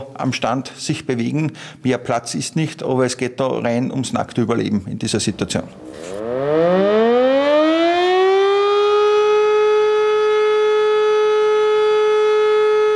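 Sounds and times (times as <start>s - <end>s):
speech: 0.2s - 6.9s
civil defense warning siren test: 5.7s - 12.9s.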